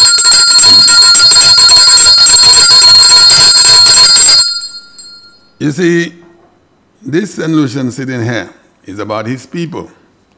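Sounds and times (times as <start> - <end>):
bell ringing rapidly with bright metallic overtones: 0.0 - 5.6
speech: 5.6 - 6.2, 7.1 - 10.0.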